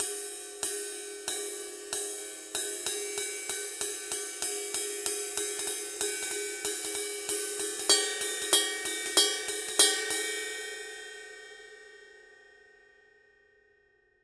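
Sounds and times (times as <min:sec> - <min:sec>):
brass 20 ride cymbal pattern: 0:00.0 - 0:11.0.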